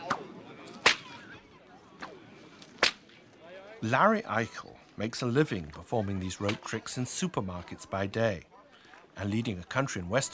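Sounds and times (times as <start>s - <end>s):
low steady murmur: 0.0s - 10.3s
whip cracking: 0.8s - 1.1s, 2.8s - 3.2s
speech: 3.8s - 8.5s, 9.2s - 10.3s.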